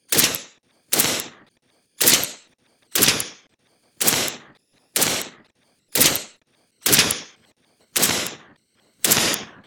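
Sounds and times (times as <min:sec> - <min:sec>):
semi-automatic handgun gunshot outdoors: 0:00.1 - 0:01.4, 0:02.0 - 0:02.4, 0:03.0 - 0:03.4, 0:04.0 - 0:05.4, 0:06.0 - 0:07.3, 0:08.0 - 0:09.6.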